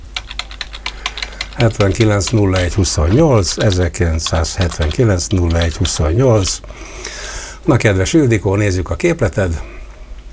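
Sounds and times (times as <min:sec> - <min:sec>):
computer keyboard typing: 0:00.0 - 0:06.6
speech: 0:01.6 - 0:09.8.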